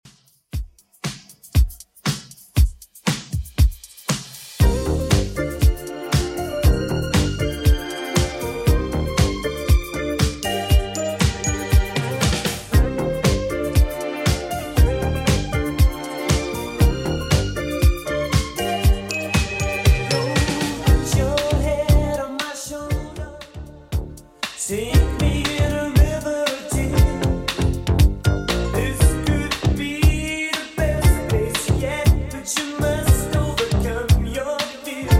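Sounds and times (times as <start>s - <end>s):
80s style music beat at 118 bpm: 0.0s - 35.1s.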